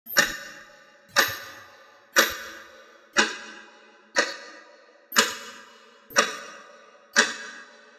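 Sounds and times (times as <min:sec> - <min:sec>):
clock ticking: 0:00.1 - 0:03.6, 0:04.2 - 0:06.6, 0:07.2 - 0:07.6.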